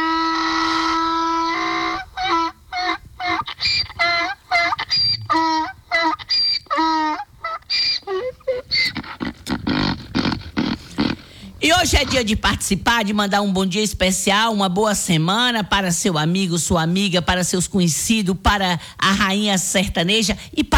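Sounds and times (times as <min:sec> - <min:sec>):
donkey braying: 0:00.0 - 0:13.4
speech: 0:11.8 - 0:20.7.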